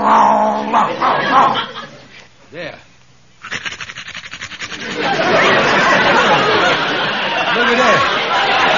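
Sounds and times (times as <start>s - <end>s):
man on all fours growling like a dog: 0.0s - 1.3s
laughter: 0.7s - 2.2s, 4.7s - 8.7s
speech: 0.9s - 1.8s.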